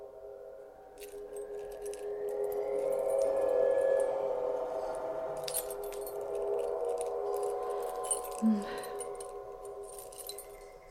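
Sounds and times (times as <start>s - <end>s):
steady low hum: 0.0s - 10.8s
bunch of keys jingling and clinking: 1.0s - 4.1s, 5.4s - 10.8s.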